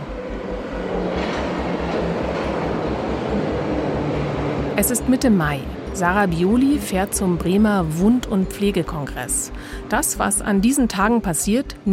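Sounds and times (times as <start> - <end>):
moving train rumble heard from inside a carriage: 0.0 - 11.8
train wheels clattering over the track: 0.1 - 4.8
speech: 4.8 - 11.9.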